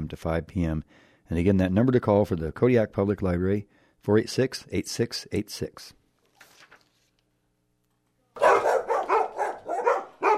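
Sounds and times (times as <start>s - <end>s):
speech: 0.1s - 6.0s
dog barking: 8.4s - 10.3s.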